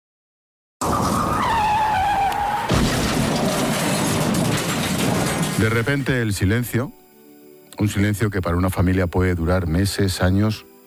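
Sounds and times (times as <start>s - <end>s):
car braking hard with tires screeching: 0.8s - 5.9s
rough scraping rumble: 0.8s - 6.6s
speech: 5.6s - 7.0s, 7.8s - 10.7s.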